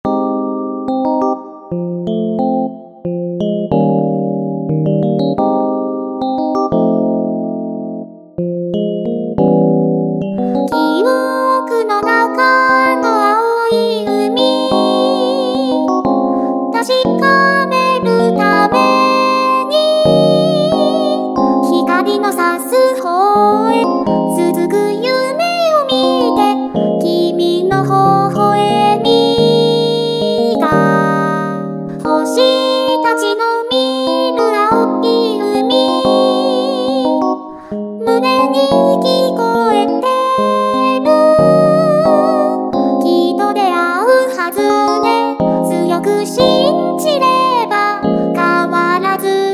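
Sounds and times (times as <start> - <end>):
software synthesizer: 0.1 - 33.3, 34.2 - 49.4.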